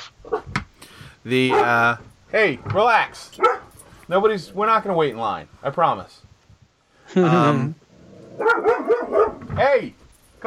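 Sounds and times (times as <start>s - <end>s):
speech: 1.2s - 3.5s, 4.1s - 6.3s, 7.1s - 7.8s, 8.4s - 10.4s
dog barking: 1.5s - 1.8s, 3.4s - 3.7s, 8.4s - 9.5s.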